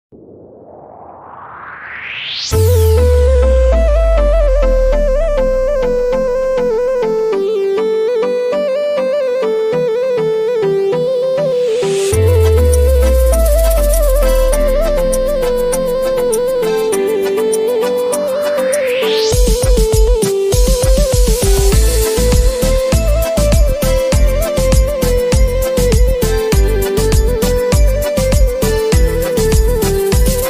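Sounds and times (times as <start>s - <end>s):
love background music flute ringtone: 2.3s - 30.4s.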